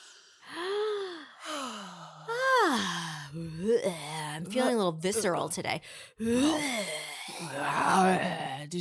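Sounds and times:
exaggerated deep breathing with gasping inhales and pitched sighs: 0.0 - 3.4
speech: 3.4 - 8.7.

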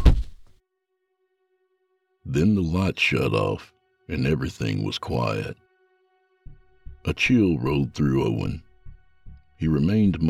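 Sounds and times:
heavy object slamming onto the floor: 0.0 - 0.4
speech: 2.3 - 5.6, 7.0 - 8.6, 9.6 - 10.2.

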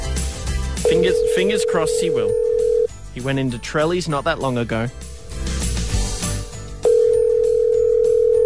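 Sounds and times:
music: 0.0 - 8.4
telephone ringing tone from an outgoing call: 0.8 - 2.9, 6.8 - 8.4
speech: 0.9 - 2.4, 3.2 - 5.1.

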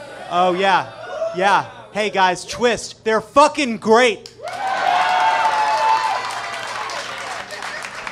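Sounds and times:
speech: 0.3 - 4.4
audience clapping: 4.2 - 8.1.

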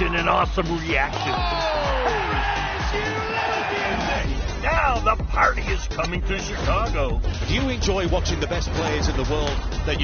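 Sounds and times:
large golf crowd roaring and cheering: 0.0 - 4.7
speech: 0.3 - 10.0
scattered whoops from the crowd: 1.3 - 2.4.

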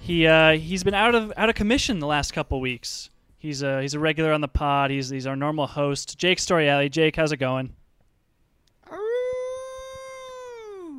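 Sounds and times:
speech: 0.1 - 7.8
person imitating a wolf howl: 8.9 - 10.9.

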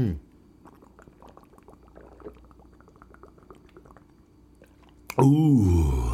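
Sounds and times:
person gulping down water: 0.6 - 6.1
loud breathy sigh of relief: 5.2 - 6.1.

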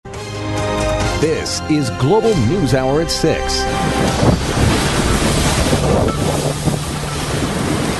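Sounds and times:
speech: 1.2 - 4.5
huge waves crashing onto shore: 1.2 - 7.9
strong wind buffeting the microphone: 2.4 - 7.9.

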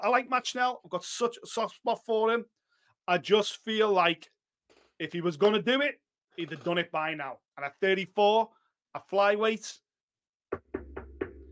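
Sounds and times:
speech: 0.0 - 4.4, 5.0 - 9.8
knuckles knocking on a wooden door: 10.5 - 11.5.

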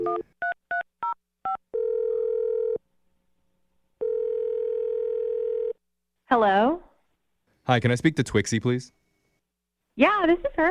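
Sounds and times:
steady telephone tone: 1.5 - 2.8, 4.0 - 5.8
speech: 6.3 - 6.8, 7.7 - 9.0, 10.0 - 10.7.

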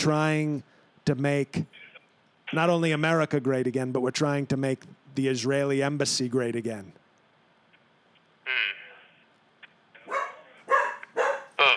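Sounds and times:
speech: 0.0 - 1.8, 2.5 - 7.0
dog barking: 10.0 - 11.6.

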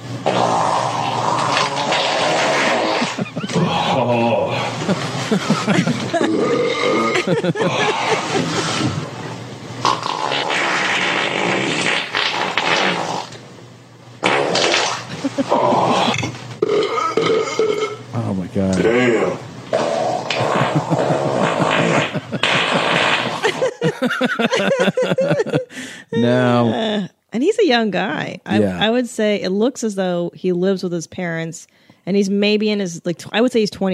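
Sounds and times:
man's loud wet rumbling farts: 0.2 - 3.6, 9.8 - 13.4, 14.2 - 17.8, 18.8 - 23.8
laughter: 3.0 - 8.7, 15.1 - 16.2, 20.4 - 22.5, 23.3 - 26.9
speech: 5.3 - 9.0, 27.7 - 33.9.

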